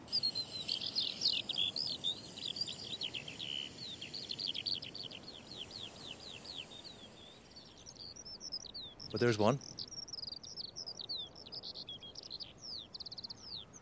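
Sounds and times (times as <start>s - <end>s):
rapid high-pitched birdsong in chirps and trills: 0.0s - 13.8s
steady outdoor hiss: 0.0s - 13.8s
speech: 9.1s - 9.8s.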